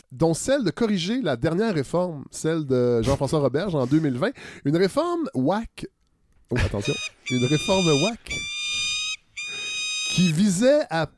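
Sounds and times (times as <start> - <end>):
speech: 0.1 - 8.5, 10.2 - 11.1
laughter: 6.6 - 7.9
falcon cry sound effect: 6.8 - 10.5.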